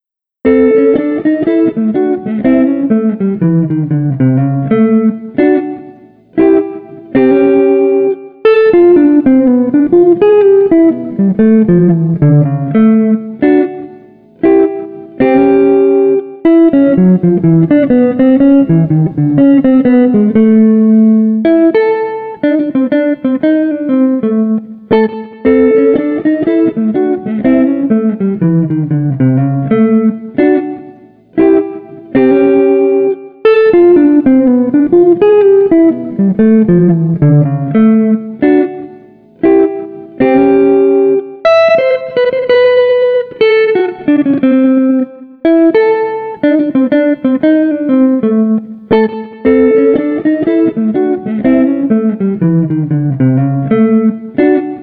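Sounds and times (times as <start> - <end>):
chill jazz street guitar playing: 0.4 - 54.8.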